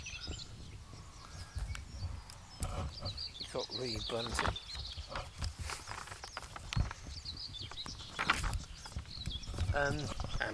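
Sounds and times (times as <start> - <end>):
garden warbler song: 0.0 - 10.5
speech: 3.6 - 5.2, 9.8 - 10.5.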